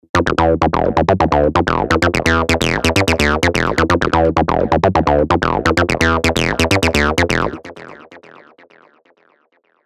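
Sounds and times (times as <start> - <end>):
acid loop in E at 128 BPM made with Spire: 0.0 - 7.8.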